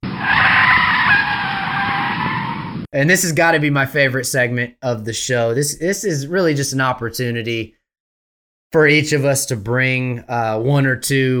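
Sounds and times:
car tire screech from hard braking: 0.0 - 2.9
speech: 2.9 - 7.8, 8.7 - 11.3.

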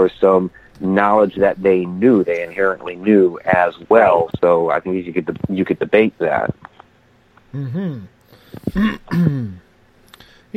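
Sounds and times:
speech: 0.0 - 6.7, 7.5 - 9.6
throat clearing: 8.6 - 9.6.

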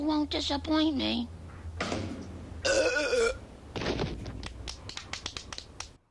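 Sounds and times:
speech: 0.0 - 2.1
loud drawn-out belch: 2.6 - 3.4.

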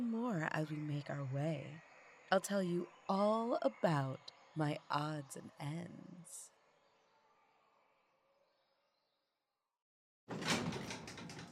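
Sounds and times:
speech: 0.4 - 6.5
elevator door sliding open: 10.3 - 11.4.

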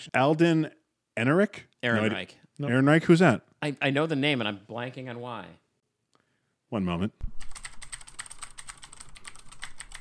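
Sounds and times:
speech: 0.0 - 5.6, 6.7 - 7.5
typing on a computer keyboard: 7.4 - 10.0.

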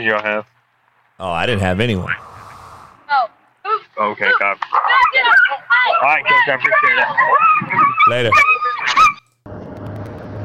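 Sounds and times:
speech: 0.0 - 0.6, 1.2 - 2.3, 4.0 - 9.1
low rumbling noise: 1.2 - 3.1
dog yelping: 4.7 - 9.3.

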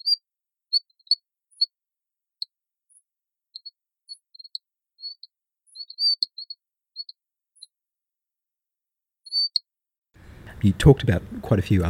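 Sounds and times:
frog calling with bird-like high-pitched chirps: 0.0 - 1.7, 3.6 - 7.7, 9.3 - 9.6
speech: 10.6 - 11.8.

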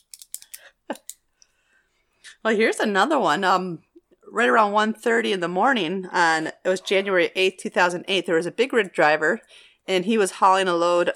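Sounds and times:
metal hair pins clicking in a hair bun: 0.0 - 1.2
speech: 2.4 - 11.1.

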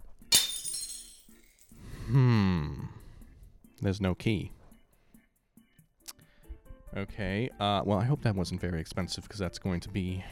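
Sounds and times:
glass case holding a trinket being smashed: 0.3 - 1.8
glass shards tinkling: 0.3 - 1.8
speech: 2.1 - 2.4, 3.8 - 4.6, 7.0 - 10.3.

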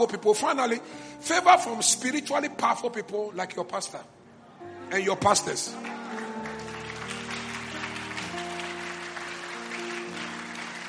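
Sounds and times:
speech: 0.0 - 4.2, 4.9 - 6.0
audience clapping: 5.7 - 10.8.

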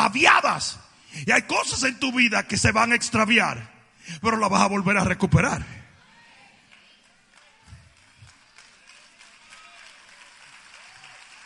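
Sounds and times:
speech: 0.2 - 5.8
audience applauding: 6.6 - 11.4.

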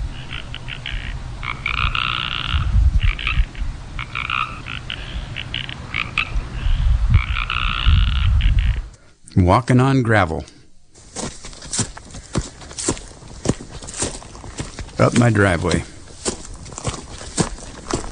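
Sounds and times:
several chorus frogs calling: 0.0 - 8.9, 11.2 - 18.0
speech: 9.4 - 10.6, 15.0 - 15.9.

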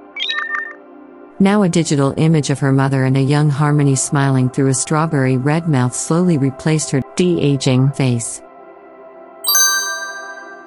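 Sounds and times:
speech: 1.4 - 8.5
bright playful electronic chime signaling a connection being established: 9.5 - 10.6.

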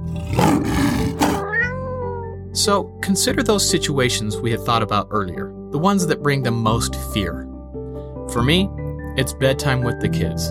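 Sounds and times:
rough growling cat-like yowl: 0.4 - 2.4
kitten meowing: 1.2 - 2.4
speech: 2.6 - 7.5, 8.3 - 10.4.

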